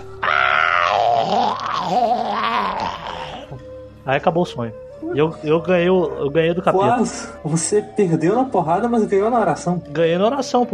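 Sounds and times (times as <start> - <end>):
man's voice imitating a devil's scream: 0.2 - 3.5
speech: 4.0 - 10.7.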